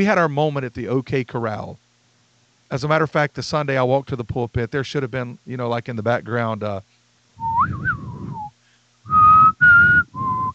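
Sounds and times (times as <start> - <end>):
speech: 0.0 - 1.8, 2.7 - 7.9
person whistling a tune: 7.4 - 8.5, 9.1 - 10.5.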